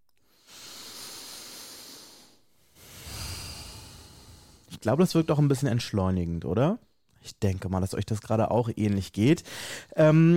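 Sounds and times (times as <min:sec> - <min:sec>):
deliberate breathing through the nose while smiling: 0:00.2 - 0:04.7, 0:09.4 - 0:10.0
speech: 0:04.8 - 0:10.3.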